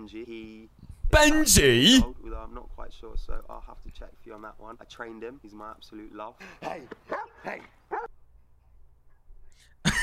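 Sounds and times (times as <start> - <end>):
speech: 0.0 - 8.0
dog barking at a man: 7.1 - 8.1.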